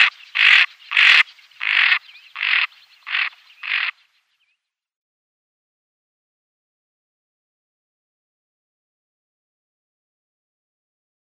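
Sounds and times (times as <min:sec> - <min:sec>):
female greater scaup uttering harsh grating buzzy calls: 0:00.0 - 0:03.9.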